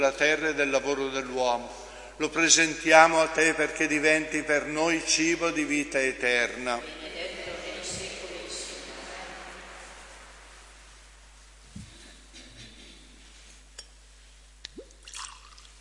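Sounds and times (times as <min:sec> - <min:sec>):
speech: 0:00.0 - 0:07.0
water pouring into wine in a chalice during Mass: 0:14.7 - 0:15.7.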